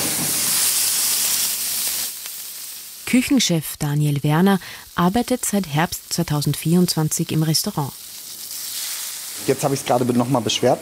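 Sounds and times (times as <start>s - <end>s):
salted wagyu steak searing in rendered wagyu fat: 0.0s - 10.8s
speech: 3.1s - 8.0s, 9.5s - 10.8s.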